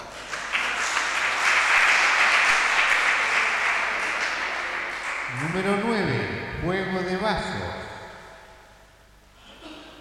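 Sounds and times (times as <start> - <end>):
audience applauding: 0.0 - 5.9
speech: 5.6 - 7.8.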